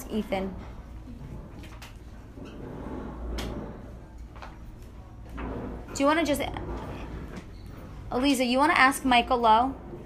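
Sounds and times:
chairs dragged across a hard floor: 0.0s - 10.0s
low room rumble: 0.0s - 10.0s
speech: 0.1s - 0.7s, 6.0s - 6.8s, 8.1s - 9.9s.

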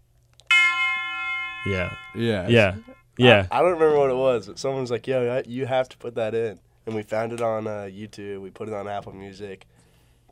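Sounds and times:
big tubular bell strike: 0.5s - 3.1s
speech: 1.6s - 9.7s.

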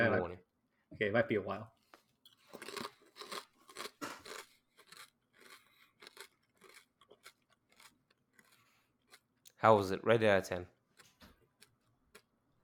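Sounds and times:
speech: 0.1s - 1.8s, 9.6s - 10.7s
crunching and chewing a crisp chip: 2.3s - 9.5s, 10.8s - 12.6s.

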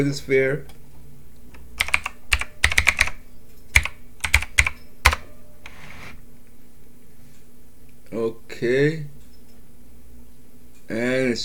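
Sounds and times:
speech: 0.0s - 0.8s, 8.1s - 9.2s, 10.9s - 11.4s
typing on a computer keyboard: 1.8s - 5.2s.

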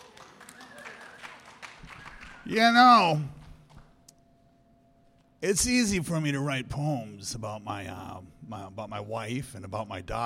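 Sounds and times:
light audience applause at a reading event: 0.0s - 2.5s
speech: 2.4s - 3.4s, 5.4s - 10.2s.

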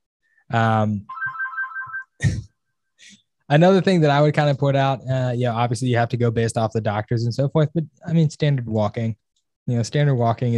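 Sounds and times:
speech: 0.5s - 1.2s, 3.0s - 10.5s
phone ringtone ringing: 1.1s - 2.2s.

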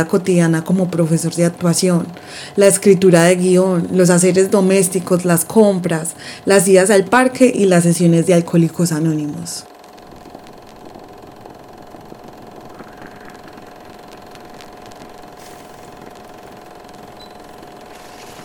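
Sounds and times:
speech: 0.0s - 9.7s
Vialetti Holstein stovetop moka pot coffee maker brewing: 9.8s - 18.4s.

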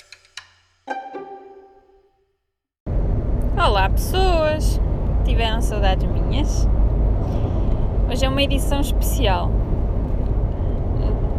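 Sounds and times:
road and engine rumble inside a moving car: 2.9s - 11.3s
speech: 3.7s - 6.8s, 8.1s - 9.6s.

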